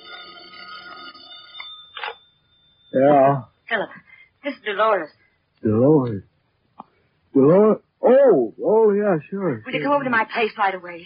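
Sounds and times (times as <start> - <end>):
telephone ringing with a shrill bell tone: 0.0 - 3.8
speech: 2.9 - 6.3, 7.4 - 11.0.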